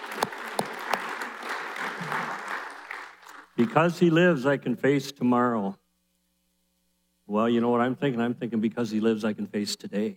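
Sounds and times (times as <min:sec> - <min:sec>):
audience applauding worship team: 0:00.0 - 0:03.8
speech: 0:03.6 - 0:05.8, 0:07.3 - 0:10.1.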